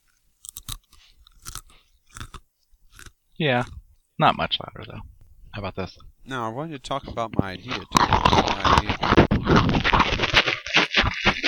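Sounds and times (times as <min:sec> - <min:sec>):
crunchy food bitten with the mouth open: 0:00.0 - 0:04.0, 0:06.9 - 0:11.4
open-mouthed chewing of crunchy food: 0:00.0 - 0:04.0, 0:06.9 - 0:11.4
speech: 0:03.4 - 0:10.2.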